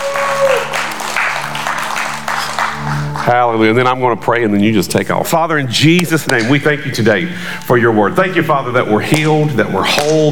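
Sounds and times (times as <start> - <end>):
audience at a church service applauding: 0.0 - 3.5
speech: 3.2 - 10.2.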